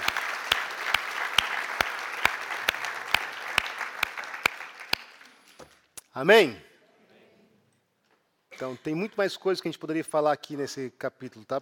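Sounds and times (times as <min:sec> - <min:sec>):
crowd clapping: 0:00.0 - 0:05.6
speech: 0:06.2 - 0:06.6, 0:08.6 - 0:11.6.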